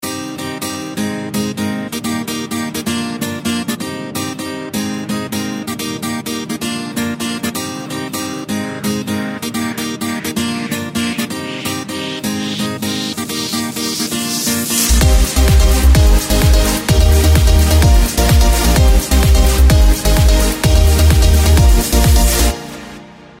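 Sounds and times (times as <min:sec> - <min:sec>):
pop guitar: 0:00.0 - 0:23.3.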